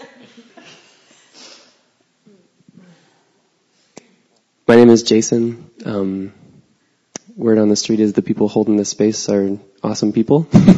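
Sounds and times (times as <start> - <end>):
person sniffling: 0.7 - 1.8
person blowing nose: 1.3 - 1.8
speech: 4.8 - 6.4, 7.4 - 10.7.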